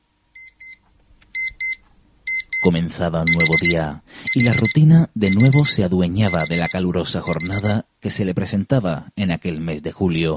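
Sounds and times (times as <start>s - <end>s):
electronic alarm clock beeping: 1.4s - 7.7s
speech: 2.6s - 10.3s.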